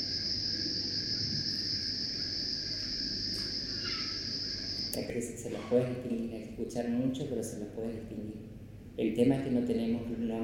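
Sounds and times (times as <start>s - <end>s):
crickets and other insects stridulating: 0.0s - 6.5s
speech: 5.0s - 10.4s.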